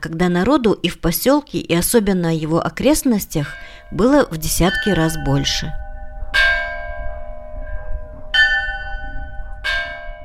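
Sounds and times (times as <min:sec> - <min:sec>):
speech: 0:00.0 - 0:05.8
village church bell tolling for a church service: 0:03.3 - 0:10.2.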